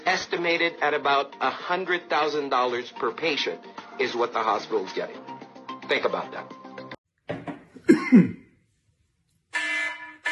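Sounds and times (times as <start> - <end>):
speech: 0.1 - 5.3, 5.9 - 6.6, 8.1 - 8.4
harsh throaty coughs: 7.8 - 8.5
loud electronic alarm buzzes: 9.6 - 10.3.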